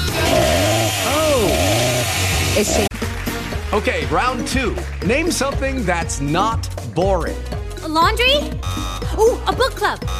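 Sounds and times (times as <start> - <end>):
chainsaw revving: 0.0 - 2.8
speech: 2.6 - 2.9, 3.7 - 10.1.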